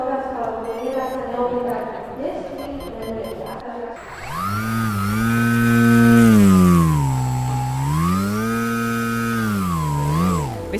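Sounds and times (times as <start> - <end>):
RC model airplane high-thrust electric motor revving: 4.0 - 10.7.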